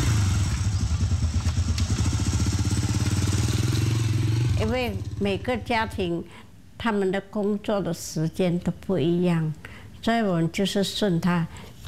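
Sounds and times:
motorcycle engine running with a throbbing low chug: 0.0 - 6.0
speech: 4.6 - 11.7.

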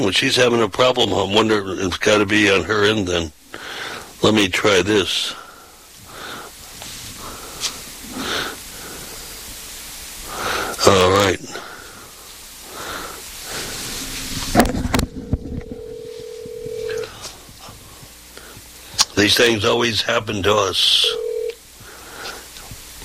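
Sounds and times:
speech: 0.0 - 3.4, 4.2 - 5.4, 10.8 - 11.6, 19.2 - 21.2
faint hiss: 0.0 - 23.0
telephone keypad tones while dialing to test a phone line: 15.6 - 17.1, 21.0 - 21.6.

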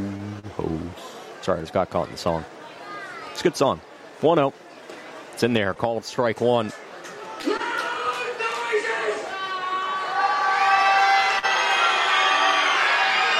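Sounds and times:
speech: 1.5 - 2.6, 3.4 - 4.6, 5.4 - 6.8
baseball stadium crowd screaming and cheering: 7.0 - 13.3.

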